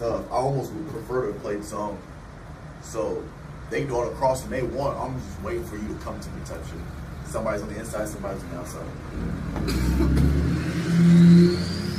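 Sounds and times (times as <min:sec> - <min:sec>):
speech: 0:00.0 - 0:02.2, 0:02.8 - 0:11.0
Ford F-250 pickup truck engine revving: 0:09.1 - 0:11.9.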